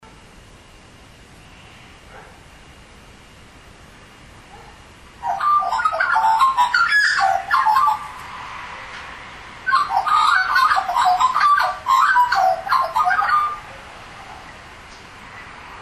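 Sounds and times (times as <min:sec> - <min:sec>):
Australian magpie warbling: 0:05.2 - 0:08.3, 0:09.7 - 0:13.7.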